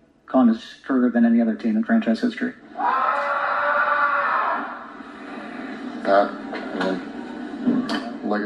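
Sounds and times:
speech: 0:00.3 - 0:03.0, 0:06.0 - 0:07.1, 0:07.9 - 0:08.4
man yelling in frustration: 0:02.8 - 0:04.8.

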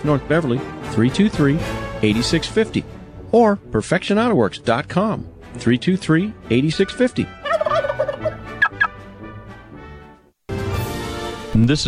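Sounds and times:
speech: 0:00.0 - 0:07.4, 0:11.6 - 0:11.8
flock of turkeys gobbling: 0:06.7 - 0:09.0.

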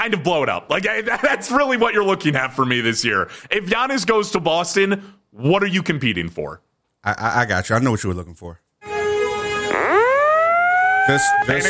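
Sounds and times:
speech: 0:00.0 - 0:08.6, 0:11.1 - 0:11.6
loud alarm siren wailing: 0:08.9 - 0:11.6.

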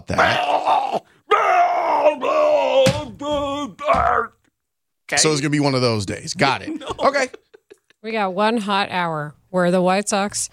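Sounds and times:
speech: 0:00.0 - 0:01.2, 0:05.1 - 0:07.4, 0:08.0 - 0:10.5
cartoon character screaming: 0:00.2 - 0:04.4
laughter: 0:06.4 - 0:08.0.

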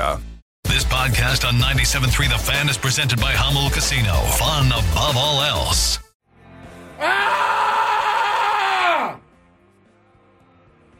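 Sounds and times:
speech: 0:01.0 - 0:06.0, 0:07.0 - 0:07.4
person screaming in agony: 0:07.0 - 0:09.2.

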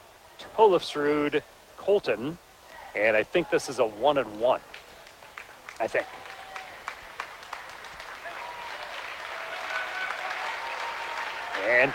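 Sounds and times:
speech: 0:00.6 - 0:04.8, 0:05.8 - 0:06.2, 0:11.7 - 0:11.9
crowd applause in a gym at a basketball game: 0:05.0 - 0:11.9.

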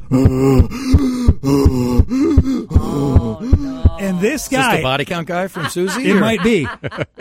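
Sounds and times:
voice imitating heavy panting of a running man: 0:00.0 - 0:04.8
speech: 0:00.1 - 0:01.8, 0:04.2 - 0:07.1
laughter: 0:03.2 - 0:07.1.

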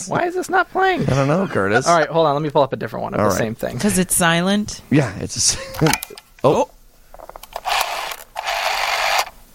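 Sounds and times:
speech: 0:00.0 - 0:06.7
old rotary telephone ringing: 0:07.5 - 0:09.3.

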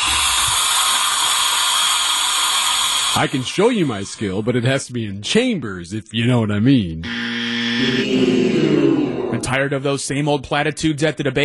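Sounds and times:
garment steamer hissing on robes: 0:00.0 - 0:04.2
speech: 0:03.1 - 0:07.2, 0:07.8 - 0:11.4.

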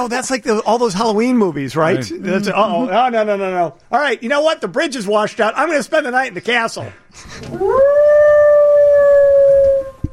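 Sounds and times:
speech: 0:00.0 - 0:08.0
coyote howling: 0:07.6 - 0:10.1.

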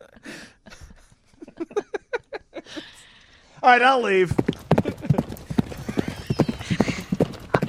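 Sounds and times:
laughter: 0:00.0 - 0:03.0, 0:04.7 - 0:07.6
speech: 0:03.6 - 0:04.4
horse hooves clip-clopping from a sound effect machine: 0:04.3 - 0:07.6.

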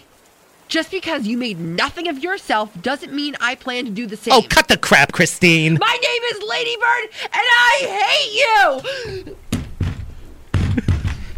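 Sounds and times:
speech: 0:00.7 - 0:09.4
rustling: 0:08.5 - 0:11.3
body flopping and thrashing around in a chair: 0:09.1 - 0:11.3.

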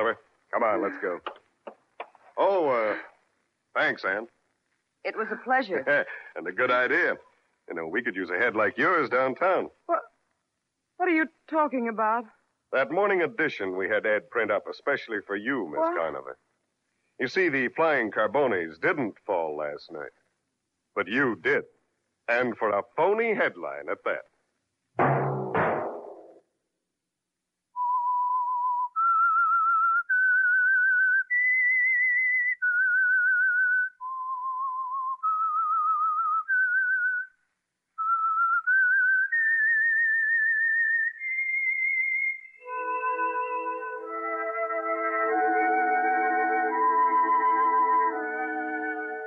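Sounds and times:
speech: 0:00.0 - 0:01.4, 0:02.4 - 0:03.1, 0:03.7 - 0:04.4, 0:05.0 - 0:10.1, 0:11.0 - 0:16.4, 0:17.2 - 0:20.2, 0:21.0 - 0:24.3
sharp knocks: 0:25.0 - 0:26.4
lone whistler whistling a slow stepwise melody: 0:27.8 - 0:37.3, 0:38.0 - 0:49.2.

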